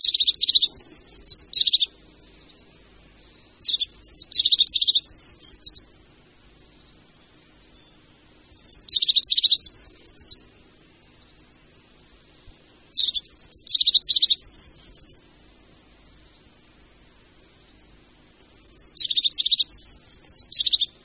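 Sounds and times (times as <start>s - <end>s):
crested tit song and calls: 0.0s - 2.7s, 3.6s - 5.9s, 8.5s - 10.4s, 12.9s - 15.2s, 18.6s - 21.0s.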